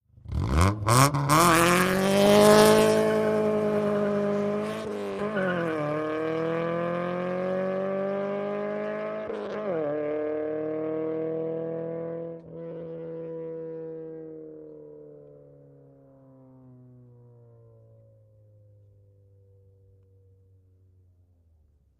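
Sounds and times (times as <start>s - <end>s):
Acura Integra revving and peeling out: 0.2s - 13.7s.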